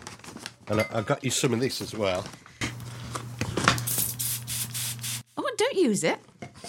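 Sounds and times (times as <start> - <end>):
speech: 0.7 - 2.5, 5.8 - 6.3
spray bottle spraying: 3.8 - 5.3.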